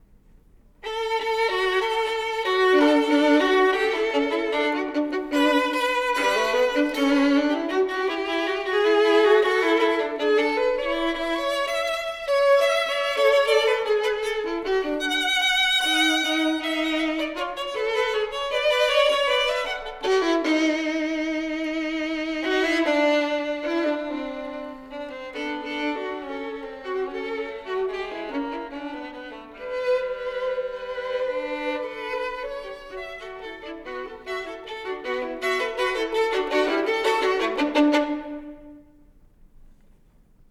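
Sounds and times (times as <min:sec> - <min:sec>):
two violins playing a comic song: 0:00.8 - 0:39.1.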